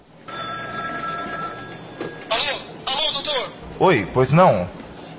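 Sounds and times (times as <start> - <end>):
telephone ringing: 0.2 - 3.4
speech: 3.8 - 4.8.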